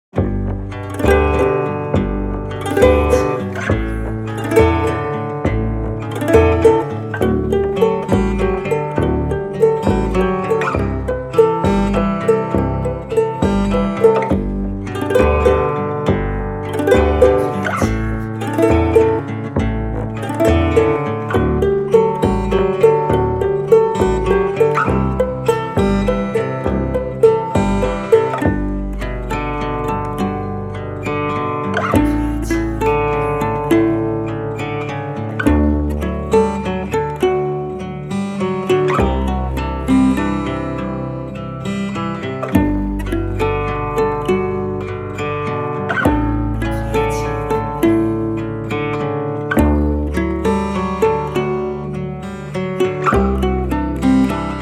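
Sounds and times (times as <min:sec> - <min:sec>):
double bass: 0:00.0 - 0:54.5.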